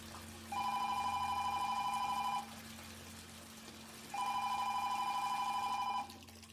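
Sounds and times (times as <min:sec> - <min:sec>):
electronic telephone ring during a call to the police emergency number: 0:00.5 - 0:02.5, 0:04.1 - 0:06.1.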